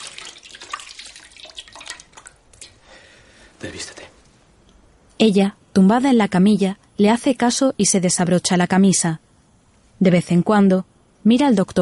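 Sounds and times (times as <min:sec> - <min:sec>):
running tap water splashing as hands are washed in a doctor's consulting room: 0:00.0 - 0:02.5
speech: 0:03.6 - 0:04.2, 0:05.2 - 0:09.2, 0:10.0 - 0:11.8.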